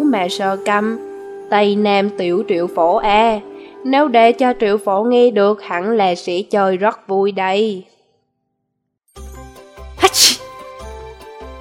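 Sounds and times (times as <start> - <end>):
speech: 0.1 - 7.9
one loud sneeze after a sharp breath in: 10.0 - 10.4.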